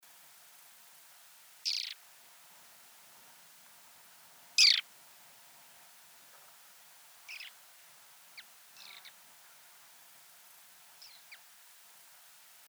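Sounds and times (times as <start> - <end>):
Caspian plover Charadrius asiaticus calling: 1.7 - 2.0, 4.6 - 4.8, 7.3 - 7.6.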